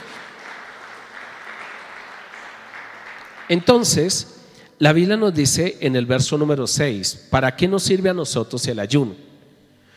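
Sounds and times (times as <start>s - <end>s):
audience applauding: 0.0s - 4.0s
speech: 3.5s - 9.3s.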